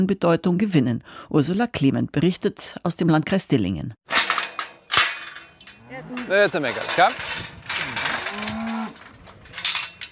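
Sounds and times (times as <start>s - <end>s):
speech: 0.0s - 4.1s, 5.9s - 7.5s
rustling farm noise: 4.2s - 10.0s
cow mooing on an organic farm in Weisingen: 5.8s - 6.6s, 7.8s - 9.1s.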